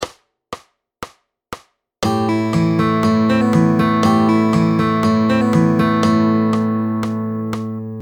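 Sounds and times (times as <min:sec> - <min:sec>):
fingerstyle picking pattern: 0:02.0 - 0:08.0.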